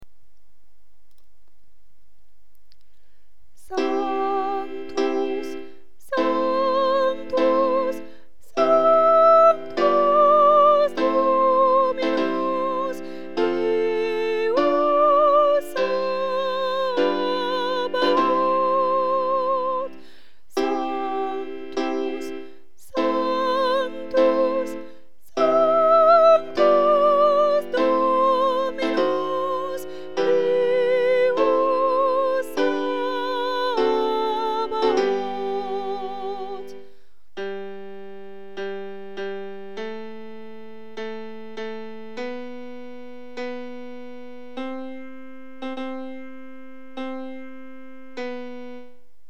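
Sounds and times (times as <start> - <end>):
sopranos singing a sanctus: 3.6 - 36.8.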